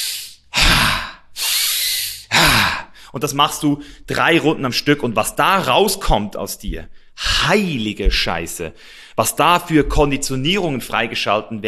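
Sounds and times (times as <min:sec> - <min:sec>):
forceful breathwork breaths drawn and pushed out: 0:00.0 - 0:03.2, 0:08.8 - 0:09.2
speech: 0:03.1 - 0:11.6.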